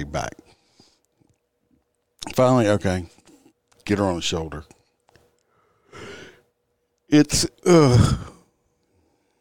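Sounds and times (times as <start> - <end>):
speech: 0.0 - 0.4, 2.3 - 3.2, 3.9 - 4.8, 7.1 - 8.3
person yawning: 7.6 - 8.4.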